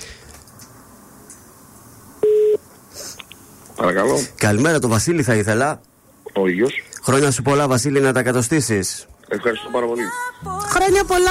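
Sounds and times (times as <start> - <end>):
single short loud electronic phone line tone: 2.2 - 2.6
speech: 3.8 - 11.3.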